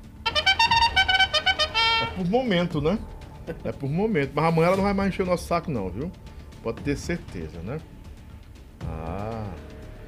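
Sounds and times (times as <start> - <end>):
brassy bugle sound effect toots: 0.2 - 2.3
speech: 2.2 - 8.0.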